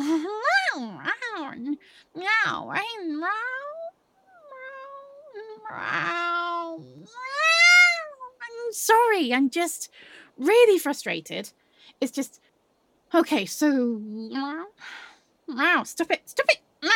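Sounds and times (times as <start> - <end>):
speech: 1.8 - 3.6, 5.4 - 7.4, 8.6 - 12.4, 13.1 - 16.9
person imitating cat with drawn-out wavering meows: 2.2 - 8.8.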